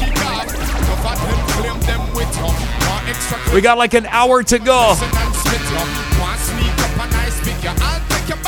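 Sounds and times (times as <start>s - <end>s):
boat sliding into the water with rumble and sloshing wash: 0.0s - 8.3s
speech: 3.5s - 5.7s.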